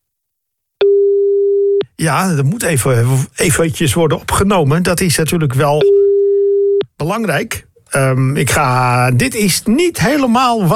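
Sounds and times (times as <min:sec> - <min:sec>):
steady electronic telephone ringing tone on an unanswered line: 0:00.8 - 0:01.8, 0:05.8 - 0:06.8
speech: 0:02.0 - 0:06.0, 0:07.0 - 0:10.7.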